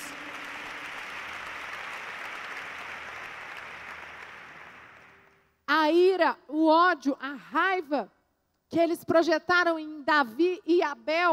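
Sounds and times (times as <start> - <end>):
large crowd clapping loudly and steadily: 0.0 - 5.5
speech: 5.9 - 11.3.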